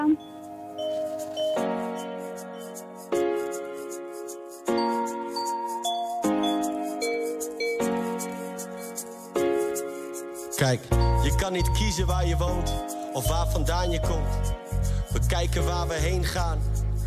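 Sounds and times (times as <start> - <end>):
song's instrumental intro with bright chiming sustained chords: 0.0 - 3.4, 4.7 - 9.6, 10.9 - 15.4
speech: 10.7 - 14.6, 15.3 - 16.8.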